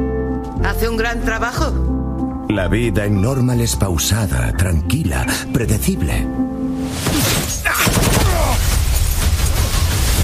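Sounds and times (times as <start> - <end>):
speech: 0.6 - 7.3
gunshots fired at a person: 7.2 - 10.2.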